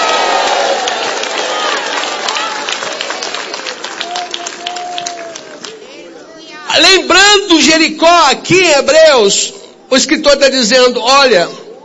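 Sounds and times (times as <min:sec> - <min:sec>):
Pentecostal church congregation cheering and shouting: 0:00.0 - 0:07.4
speech: 0:06.8 - 0:11.6.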